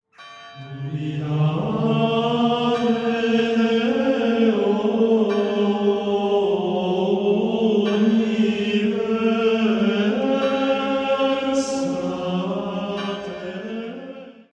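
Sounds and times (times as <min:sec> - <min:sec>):
Gregorian chant singing: 0:00.6 - 0:14.5.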